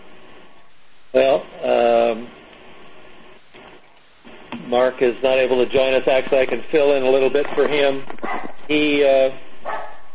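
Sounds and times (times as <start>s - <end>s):
speech: 4.7s - 9.4s
dog barking over a phone line during an online meeting: 8.2s - 8.6s, 9.6s - 10.1s.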